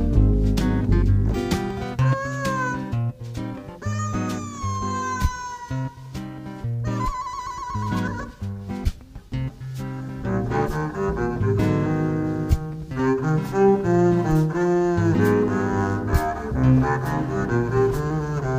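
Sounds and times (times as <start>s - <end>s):
busy instrumental music: 0.0s - 18.5s
cat meowing: 2.0s - 6.1s, 6.8s - 8.4s.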